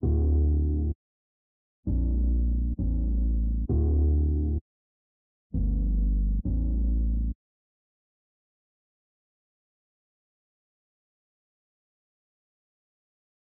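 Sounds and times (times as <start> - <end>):
bass loop in D minor: 0.0 - 1.0, 1.9 - 4.6, 5.6 - 7.4.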